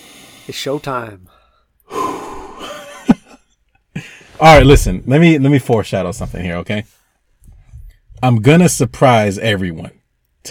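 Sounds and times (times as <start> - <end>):
sharp puff of air: 0.0 - 0.6
person breathing deeply settling into a reclining chair: 0.0 - 2.7, 4.0 - 4.4
speech: 0.5 - 1.4, 4.4 - 7.0, 8.2 - 10.4.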